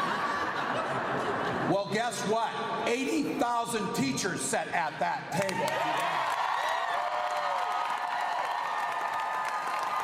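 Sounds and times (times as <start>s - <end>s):
laughter: 0.0s - 2.2s
speech: 1.7s - 6.2s
dense applause: 5.4s - 10.0s
large crowd of teachers roaring and cheering: 5.4s - 10.0s
scattered whoops and shouts: 5.4s - 10.0s.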